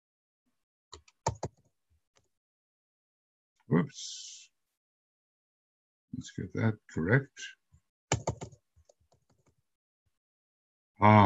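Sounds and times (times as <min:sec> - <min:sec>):
typing on a computer keyboard: 0:01.0 - 0:01.6, 0:08.1 - 0:09.5
speech: 0:03.8 - 0:04.2, 0:06.2 - 0:08.3, 0:11.0 - 0:11.2.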